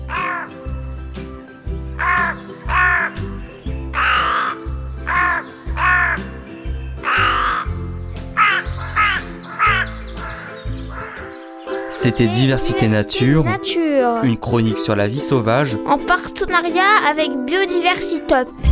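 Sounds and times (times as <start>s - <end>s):
crow cawing with harsh raspy calls: 0.1s - 0.6s, 2.0s - 6.4s, 7.0s - 11.6s
speech: 12.0s - 18.6s.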